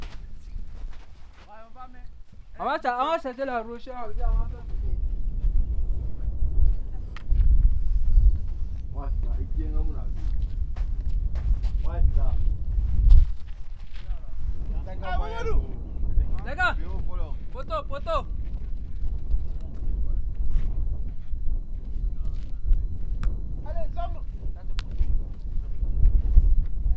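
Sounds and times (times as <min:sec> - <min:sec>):
wind blowing across the microphone: 0:00.0 - 0:26.9
speech: 0:02.6 - 0:04.7, 0:14.9 - 0:15.8, 0:16.4 - 0:18.4
voices calling out: 0:14.9 - 0:18.3.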